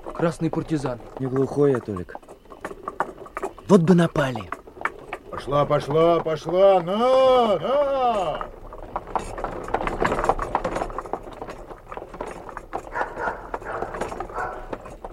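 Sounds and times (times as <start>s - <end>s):
clip-clop of horse hooves pulling a cart in a village: 0.0s - 15.1s
horse-drawn cart wheels rattling: 0.0s - 15.1s
speech: 0.2s - 2.3s, 3.7s - 4.6s, 5.3s - 8.6s
dogs barking in a village: 12.8s - 15.0s.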